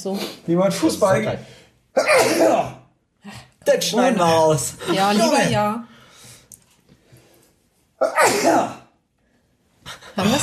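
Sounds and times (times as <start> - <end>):
speech: 0.0 - 5.9, 8.0 - 8.8, 10.2 - 10.4
loud sneeze: 2.0 - 2.9, 8.0 - 9.0.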